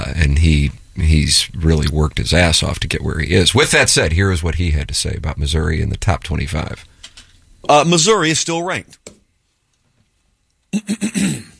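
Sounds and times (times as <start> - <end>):
speech: 0.1 - 6.9, 7.6 - 9.1, 10.7 - 11.5
throat clearing: 10.8 - 11.5.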